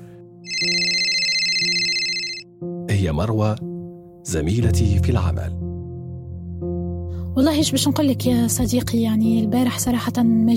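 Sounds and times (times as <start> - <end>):
phone ringing with a warbling electronic tone: 0.5 - 2.5
speech: 0.6 - 1.8, 3.0 - 5.7, 7.4 - 10.5.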